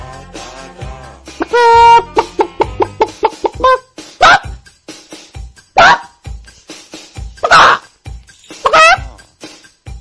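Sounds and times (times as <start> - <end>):
person vocally imitating a startled clucking chicken: 1.4 - 4.6, 7.4 - 7.9, 8.6 - 9.2.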